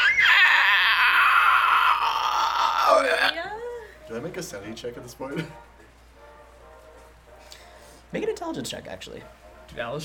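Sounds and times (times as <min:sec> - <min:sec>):
person imitating a shrill screech: 0:00.0 - 0:03.5
speech: 0:02.9 - 0:03.5, 0:04.1 - 0:05.7, 0:08.1 - 0:10.0.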